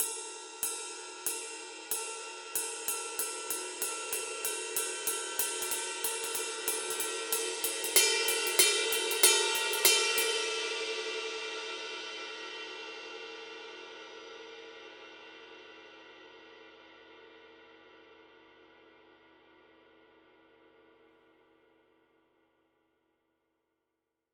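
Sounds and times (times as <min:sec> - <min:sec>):
heavy ride cymbal pattern on a 22 inch ride: 0:00.0 - 0:17.3.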